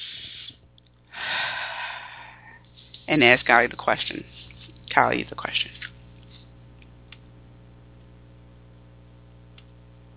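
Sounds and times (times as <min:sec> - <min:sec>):
deep breath taken during a guided spiritual meditation: 0:01.1 - 0:02.6
speech: 0:03.1 - 0:04.4, 0:05.0 - 0:05.8.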